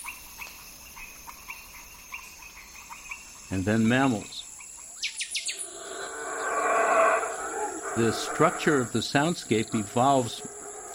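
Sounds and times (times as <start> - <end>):
dense constant hiss of insects: 0.0 - 10.9
speech: 3.5 - 4.4, 8.0 - 10.5
short frog-like amphibian calls: 5.0 - 10.9.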